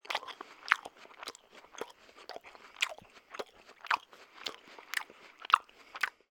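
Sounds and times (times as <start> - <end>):
person eating apple: 0.0 - 6.3.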